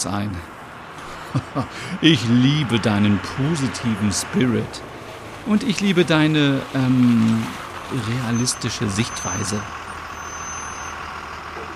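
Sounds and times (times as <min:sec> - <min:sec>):
speech: 0:00.0 - 0:00.6, 0:01.3 - 0:09.8
bus engine rumbling: 0:00.0 - 0:11.7
laughter: 0:01.0 - 0:04.0.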